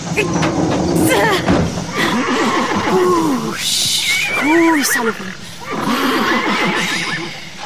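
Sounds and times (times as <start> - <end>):
speech: 0.2 - 1.5, 4.8 - 5.4
horse neighing: 1.1 - 3.6, 4.8 - 7.5.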